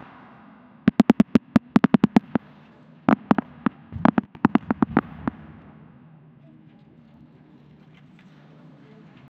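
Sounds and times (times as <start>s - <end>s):
cinematic bouncing echo: 0.9s - 2.4s, 3.1s - 5.4s.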